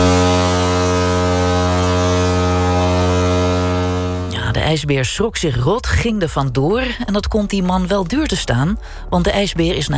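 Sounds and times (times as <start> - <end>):
ship's foghorn blast: 0.0 - 4.4
speech: 4.7 - 9.9.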